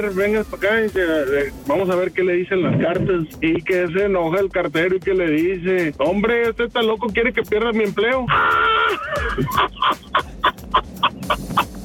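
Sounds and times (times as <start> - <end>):
speech: 0.0 - 10.3
laughter: 8.3 - 11.8
turkey gobbling: 9.2 - 11.8.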